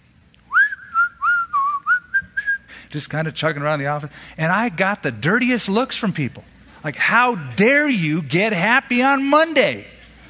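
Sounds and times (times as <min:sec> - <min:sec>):
faint hum: 0:00.0 - 0:10.2
person whistling a bouncy melody: 0:00.5 - 0:02.7
speech: 0:02.9 - 0:09.9.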